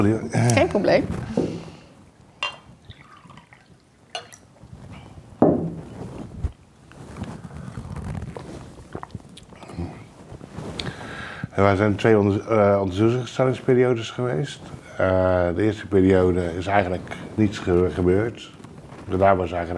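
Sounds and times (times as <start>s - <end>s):
speech: 0.0s - 1.6s, 11.6s - 19.7s
glass clinking: 2.4s - 4.5s
water pouring into a glass: 2.4s - 4.5s.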